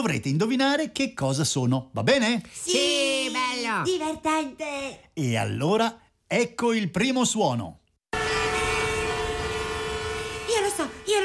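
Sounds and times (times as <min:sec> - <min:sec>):
speech: 0:00.0 - 0:03.0, 0:03.7 - 0:07.8
buses in city traffic: 0:08.2 - 0:11.2
cars in city traffic: 0:08.2 - 0:11.2.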